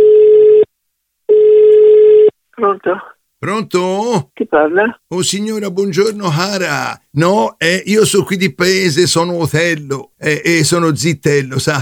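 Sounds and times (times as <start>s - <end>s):
telephone ringing tone on the line: 1.3s - 2.3s
speech: 2.8s - 11.8s.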